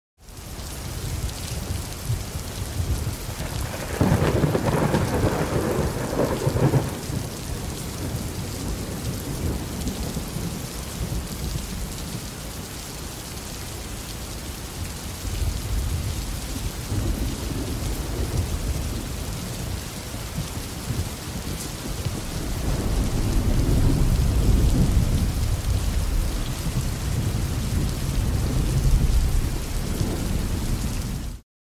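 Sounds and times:
heavy rain in urban thunderstorm: 0.2 - 31.4
urban thunderstorm thunder: 2.8 - 11.3, 15.5 - 31.4.

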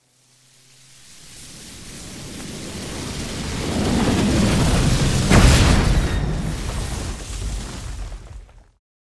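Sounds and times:
huge magic spell explosion hit: 1.9 - 8.7.

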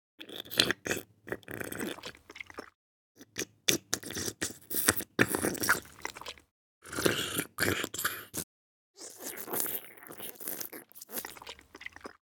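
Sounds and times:
cartoon slurping soup sucking noise: 0.6 - 2.7, 4.0 - 8.4, 9.0 - 12.2.

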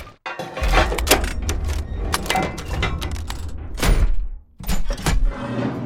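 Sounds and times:
mechanical metallic gears moving: 0.5 - 5.6.

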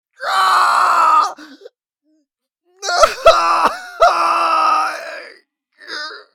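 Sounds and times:
man yelling in pain screaming loudly: 0.2 - 1.4, 2.8 - 5.4.

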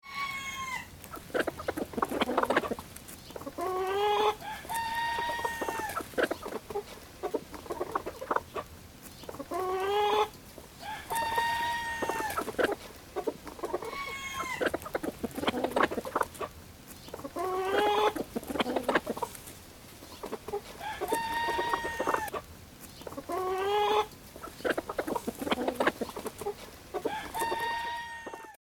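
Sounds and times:
farm roosters crowing: 0.0 - 2.8, 3.5 - 6.6, 9.6 - 12.8, 13.4 - 16.2, 17.4 - 19.2, 20.4 - 22.4, 27.0 - 28.6
farm hens clucking: 0.0 - 28.6.

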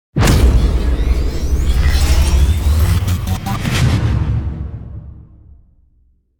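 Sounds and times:
time warp slow motion energy portal whoosh: 0.2 - 5.4.

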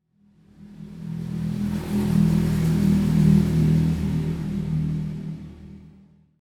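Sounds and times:
motorbike passing by at medium speed: 0.6 - 5.5.

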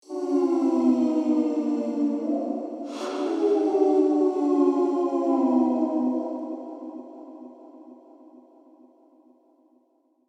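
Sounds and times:
spooky ghost wail: 0.0 - 8.0.

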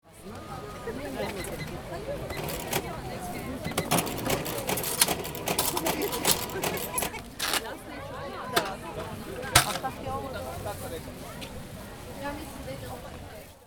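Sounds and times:
market voices: 0.0 - 13.6
money being exchanged: 0.9 - 7.8, 9.5 - 10.0.

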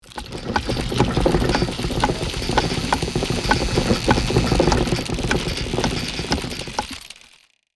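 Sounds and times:
medieval castle drawbridge retracting: 0.0 - 7.4.

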